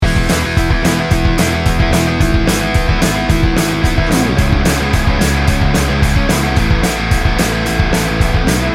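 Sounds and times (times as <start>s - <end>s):
fast power pop rock loop: 0.0s - 8.7s.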